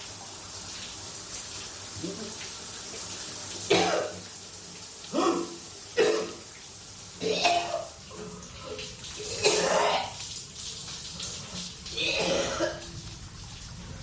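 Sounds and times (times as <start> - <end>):
shower running with steady hiss of falling water: 0.0 - 14.0
person coughing or retching under shower spray: 3.7 - 4.2, 5.1 - 6.4, 7.2 - 8.0, 9.2 - 10.2, 11.9 - 13.0.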